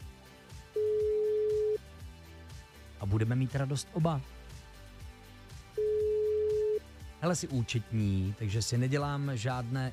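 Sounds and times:
phone ringback tone while calling an accountant: 0:00.8 - 0:01.8, 0:05.8 - 0:06.8
speech: 0:03.0 - 0:04.4, 0:07.2 - 0:09.9.

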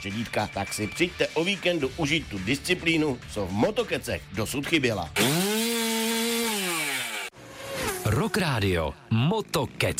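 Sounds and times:
speech: 0:00.0 - 0:05.3, 0:08.2 - 0:09.9
chainsaw running at steady high revs: 0:05.2 - 0:08.6.

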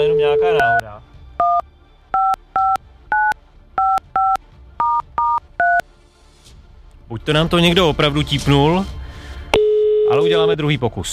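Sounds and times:
touch-tone telephone dialing beeps: 0:00.0 - 0:00.8, 0:01.4 - 0:01.6, 0:02.2 - 0:05.8, 0:09.6 - 0:10.5
speech: 0:00.0 - 0:01.1, 0:07.2 - 0:09.0, 0:10.1 - 0:11.1.

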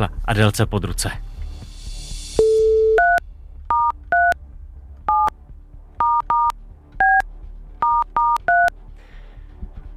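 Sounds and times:
speech: 0:00.0 - 0:01.3
DTMF dual-tone beeps of a phone number being dialed: 0:02.4 - 0:04.4, 0:05.1 - 0:05.3, 0:06.0 - 0:07.2, 0:07.8 - 0:08.7.

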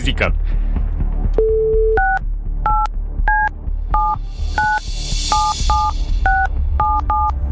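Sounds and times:
speech: 0:00.1 - 0:00.6
touch-tone beeps of a phone number being dialed: 0:01.4 - 0:07.4.

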